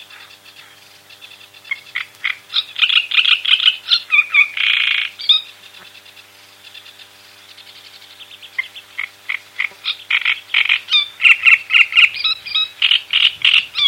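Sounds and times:
great reed warbler singing: 0:00.0 - 0:13.8.

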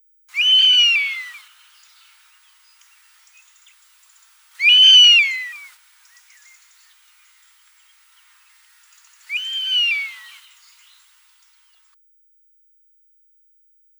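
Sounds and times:
European honey buzzard call: 0:00.3 - 0:10.6.

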